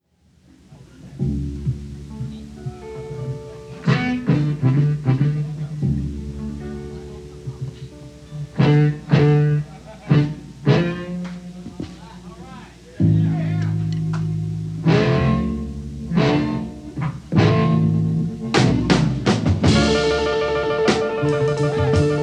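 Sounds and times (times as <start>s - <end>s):
slow instrumental music: 0.4s - 22.2s.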